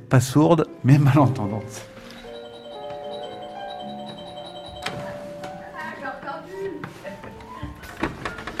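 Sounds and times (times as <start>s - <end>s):
speech: 0.1s - 1.9s
doorbell at a door chiming: 2.0s - 6.0s.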